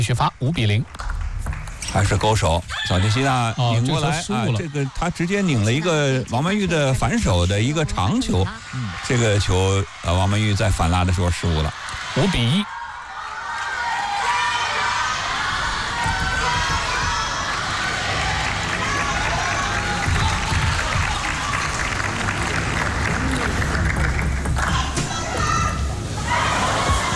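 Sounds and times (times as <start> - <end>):
speech: 0.0 - 1.1, 1.9 - 12.8
table tennis match spectators shouting and cheering: 1.9 - 27.1
clapping: 18.2 - 24.8.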